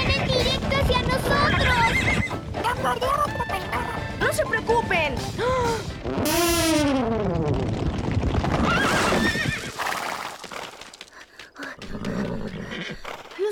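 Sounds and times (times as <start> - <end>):
rapid hoofbeats of runaway horses: 0.0 - 13.4
horse whinnying and neighing: 1.3 - 2.4, 6.0 - 7.7, 8.4 - 10.8, 11.8 - 13.4.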